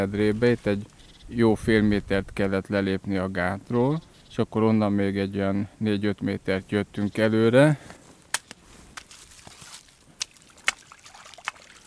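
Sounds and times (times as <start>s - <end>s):
speech: 0.0s - 8.0s
shallow water trickling at the lake bed edge: 9.1s - 11.8s.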